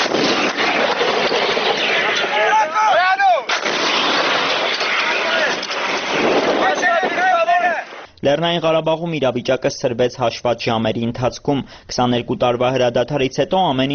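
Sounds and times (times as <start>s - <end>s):
artillery and rocket-launcher fire in a battle in Nagorno-Karabakh: 0.0s - 2.8s, 3.4s - 8.1s
tanks in action in battle: 0.0s - 8.1s
wind buffeting the microphone: 5.4s - 7.5s
speech: 8.2s - 13.9s.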